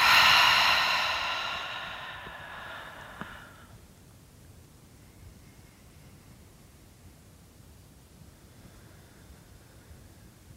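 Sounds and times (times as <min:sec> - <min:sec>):
deep breath through the nose and full exhale: 0:00.0 - 0:03.8.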